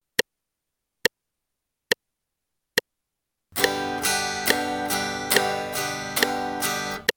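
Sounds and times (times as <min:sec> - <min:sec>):
guitar upstrokes and downstrokes on G: 0:03.6 - 0:07.1.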